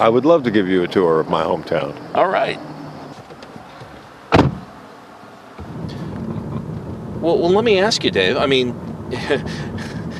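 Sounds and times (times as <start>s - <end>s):
speech: 0.0s - 2.7s, 7.2s - 9.9s
car engine starting up and rumbling: 0.0s - 10.1s
car door slamming shut: 3.0s - 4.8s, 5.6s - 7.2s.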